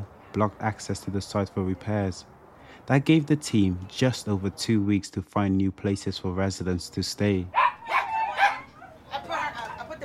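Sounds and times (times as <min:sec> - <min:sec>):
speech: 0:00.4 - 0:07.6
dogs barking and yipping in cages: 0:07.5 - 0:09.9.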